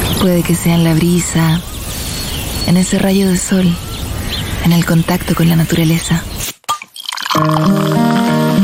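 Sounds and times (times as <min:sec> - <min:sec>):
speech: 0:00.2 - 0:01.7, 0:02.7 - 0:03.9, 0:04.7 - 0:06.3, 0:07.4 - 0:07.9
beer bottle opening snap: 0:06.4 - 0:08.0
beer fizzing: 0:06.7 - 0:08.5
beer pouring from a bottle: 0:06.8 - 0:08.4.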